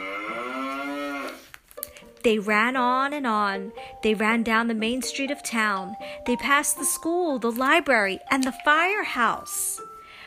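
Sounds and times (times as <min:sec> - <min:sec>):
cow mooing: 0:00.0 - 0:01.4
speech: 0:02.2 - 0:09.8.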